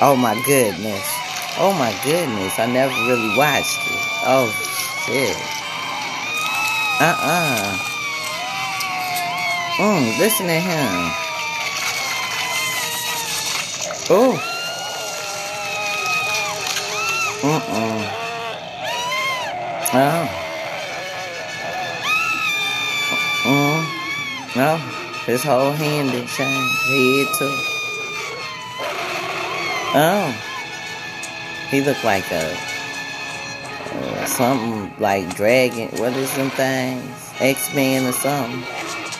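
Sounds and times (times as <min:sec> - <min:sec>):
speech: 0:00.0 - 0:05.6, 0:07.0 - 0:07.9, 0:09.8 - 0:11.2, 0:14.1 - 0:14.5, 0:17.4 - 0:18.2, 0:19.9 - 0:20.4, 0:23.4 - 0:23.9, 0:24.6 - 0:27.8, 0:29.9 - 0:30.5, 0:31.7 - 0:32.7, 0:34.0 - 0:38.8
high wavering screams and shrieks from a horror music video: 0:00.0 - 0:39.1.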